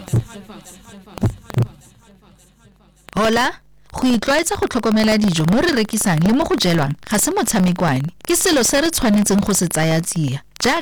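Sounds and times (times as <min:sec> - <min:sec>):
deep booming heartbeat thumps in a radio station jingle: 0:00.0 - 0:00.5, 0:01.2 - 0:01.8
speech: 0:00.4 - 0:01.3, 0:03.2 - 0:10.8.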